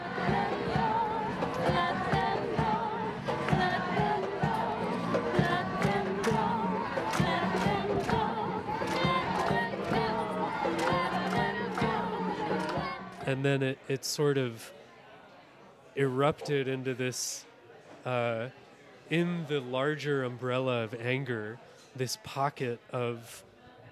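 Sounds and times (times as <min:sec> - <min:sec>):
large protest crowd chanting in unison: 0:00.0 - 0:14.6
speech: 0:13.3 - 0:14.8, 0:16.0 - 0:23.5.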